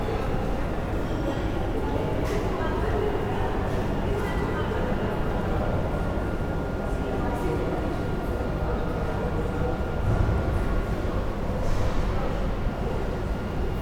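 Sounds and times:
urban airport interior ambience: 0:00.0 - 0:13.8.

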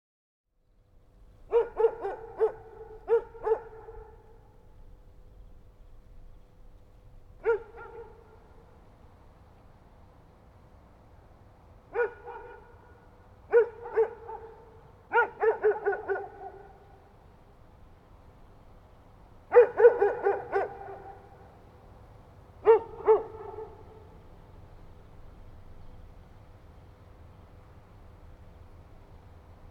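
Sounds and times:
dogs: 0:01.5 - 0:04.4, 0:07.4 - 0:08.6, 0:11.9 - 0:17.1, 0:19.5 - 0:21.5, 0:22.6 - 0:24.2.

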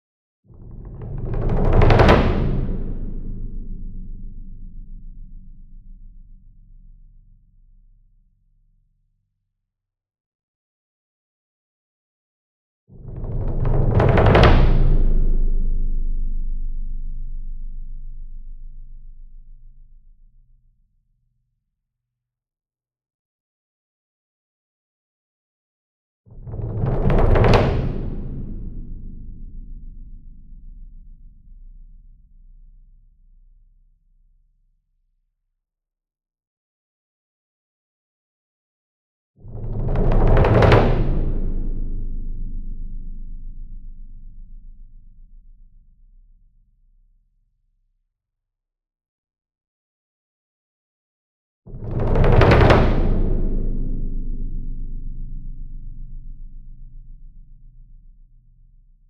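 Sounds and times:
40 inch concert bass drum roll with soft beater: 0:00.6 - 0:06.0, 0:13.1 - 0:17.8, 0:26.4 - 0:31.4, 0:39.5 - 0:44.8, 0:51.7 - 0:57.2.

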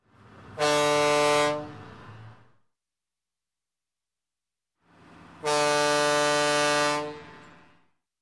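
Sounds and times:
marine tugboat horn blast: 0:00.5 - 0:01.9, 0:05.4 - 0:07.6.

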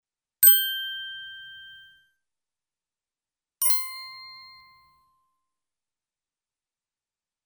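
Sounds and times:
small cartoon bell ding: 0:00.4 - 0:01.9, 0:03.6 - 0:04.9.

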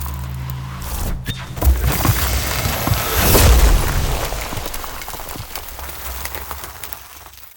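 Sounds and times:
ice spell hailstorm barrage damage effect: 0:00.8 - 0:07.5.

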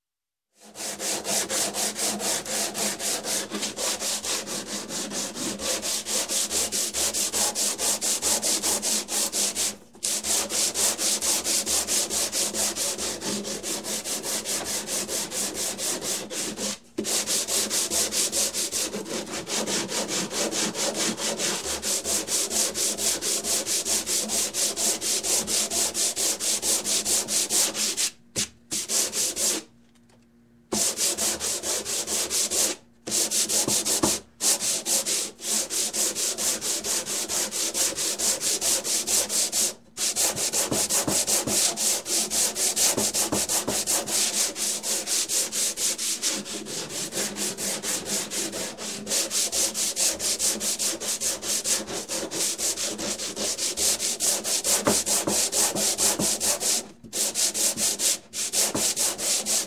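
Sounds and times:
sanding wood by hand in construction: 0:00.6 - 0:29.7, 0:30.7 - 0:59.6.

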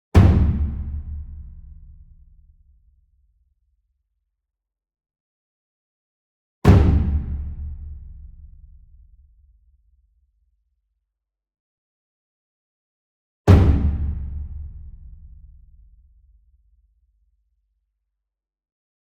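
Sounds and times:
ensemble taiko drum hit of medium strength: 0:00.2 - 0:02.4, 0:06.7 - 0:08.8, 0:13.5 - 0:15.6.

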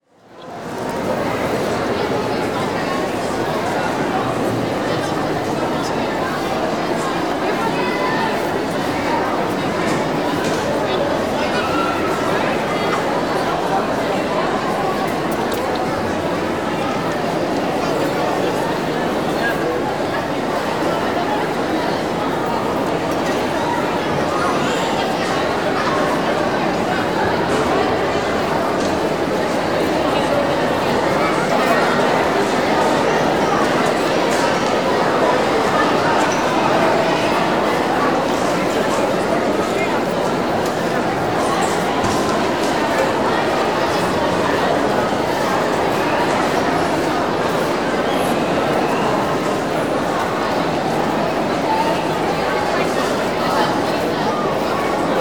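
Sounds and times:
crowd walla in a large indoor room: 0:00.0 - 0:55.1.

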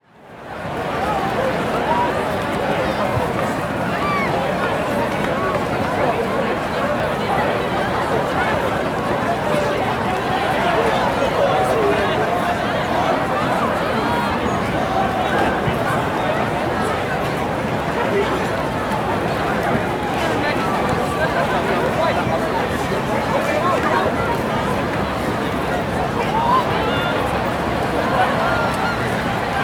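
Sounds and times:
busy crowd walla at an outdoor street fair: 0:00.0 - 0:29.6.

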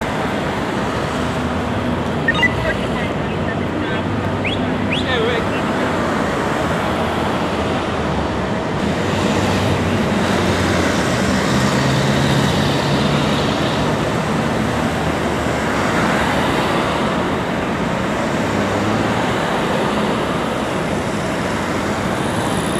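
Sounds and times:
city ambience in LA: 0:00.0 - 0:22.7.

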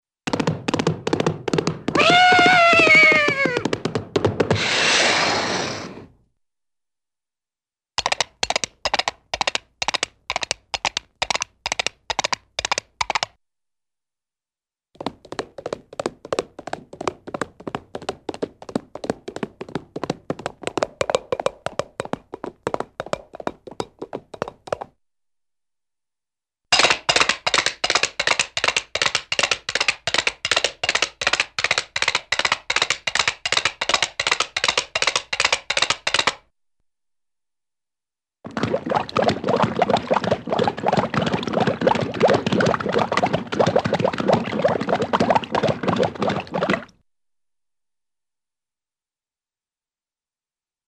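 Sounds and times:
funny cartoon horse hooves: 0:00.2 - 0:06.2, 0:08.0 - 0:13.4, 0:15.0 - 0:25.0, 0:26.7 - 0:36.5, 0:38.4 - 0:47.0.

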